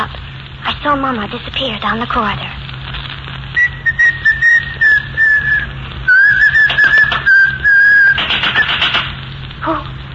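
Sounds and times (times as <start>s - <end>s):
speech: 0.8s - 2.7s
person whistling a short wavering tune: 3.6s - 8.8s
brisk clattering: 6.2s - 9.2s.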